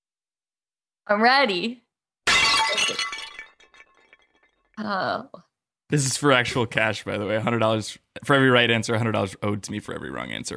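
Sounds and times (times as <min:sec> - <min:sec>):
speech: 0:01.1 - 0:01.8, 0:04.8 - 0:10.5
bowl breaking: 0:02.3 - 0:04.8.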